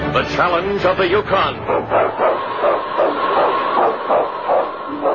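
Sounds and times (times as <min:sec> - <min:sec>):
speech: 0:00.2 - 0:02.7
husky sled lead dog barking in the Yukon: 0:01.6 - 0:05.1.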